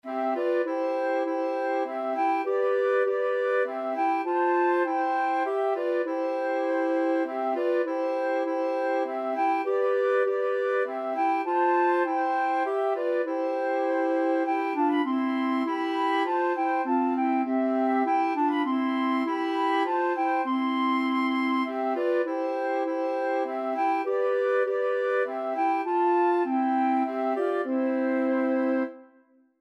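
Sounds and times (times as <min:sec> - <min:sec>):
clarinet playing a hymn: 0:00.0 - 0:29.5
flute playing a hymn: 0:00.0 - 0:29.5.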